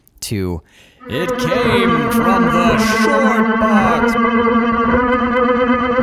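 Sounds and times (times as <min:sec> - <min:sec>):
speech: 0:00.2 - 0:05.9
voice distorted with heavy electronic effects, echo and chorus: 0:01.0 - 0:04.3.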